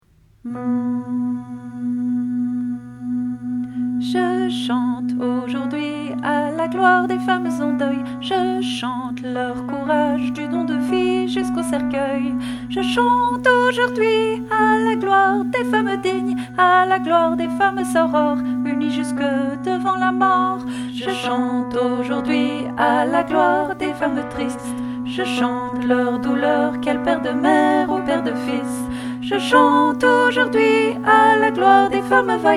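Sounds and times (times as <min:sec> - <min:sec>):
full choir voices singing: 0:00.5 - 0:32.5.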